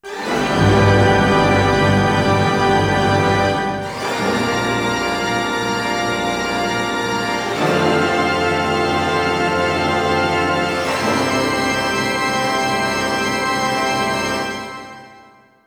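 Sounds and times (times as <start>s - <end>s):
orchestral opening jingle in F: 0.0s - 15.3s.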